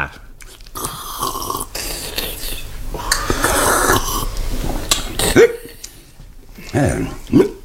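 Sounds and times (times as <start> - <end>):
breathy noises: 0.8 - 7.5
person hiccuping: 5.2 - 5.8.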